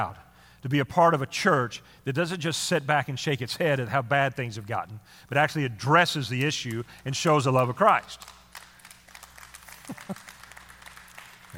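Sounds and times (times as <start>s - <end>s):
speech: 0.0s - 8.4s, 9.9s - 10.2s
crowd of people clapping together: 6.4s - 11.5s.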